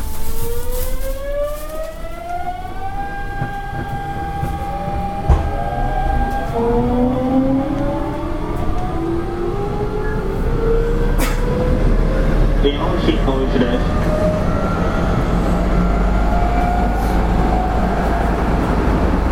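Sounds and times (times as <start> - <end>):
electric train low rumble: 0.0 - 19.3
electric train motor whine accelerating: 0.0 - 19.3.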